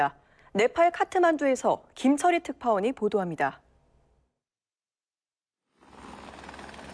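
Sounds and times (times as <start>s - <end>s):
speech: 0.0s - 3.6s
rescue team helicopter rotor roar over flood-damaged areas in Nepal: 5.8s - 6.9s.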